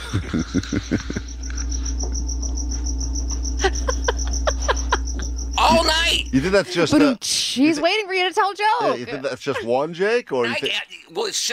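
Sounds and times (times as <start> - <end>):
laughter: 0.0 - 1.8, 3.6 - 7.2, 8.6 - 10.7
cricket chirping indoors: 0.0 - 7.8
low hum: 0.0 - 11.5
speech: 0.1 - 1.3, 5.7 - 11.5.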